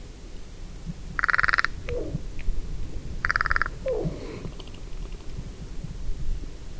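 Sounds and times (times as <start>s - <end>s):
low background rumble: 0.3s - 6.6s
Carrion crow (Corvus corone) giving coarse grating caws: 3.2s - 4.6s.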